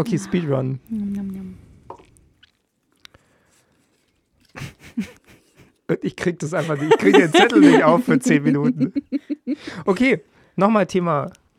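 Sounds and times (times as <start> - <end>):
speech: 0.0 - 1.4, 5.0 - 5.2, 5.9 - 11.4
soft mouth clicks: 0.8 - 3.3
wet smacking and chewing noises: 0.9 - 4.6
laughter: 4.6 - 5.8, 6.4 - 9.6.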